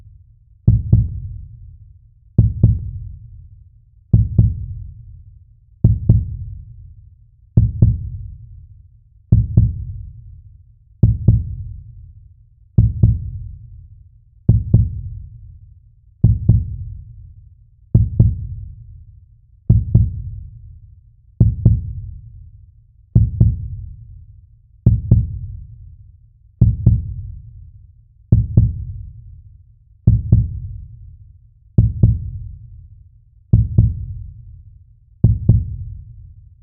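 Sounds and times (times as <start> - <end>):
heartbeat thumping with deep double thuds: 0.7 - 1.3, 2.4 - 3.0, 4.2 - 4.7, 5.8 - 6.4, 7.6 - 8.1, 9.3 - 9.8, 11.0 - 11.6, 12.8 - 13.3, 14.5 - 15.1, 16.2 - 16.8, 18.0 - 18.5, 19.7 - 20.3, 21.4 - 22.0, 23.2 - 23.8, 24.9 - 25.4, 26.6 - 27.2, 28.3 - 28.9, 30.1 - 30.7, 31.8 - 32.4, 33.6 - 34.2, 35.2 - 35.9.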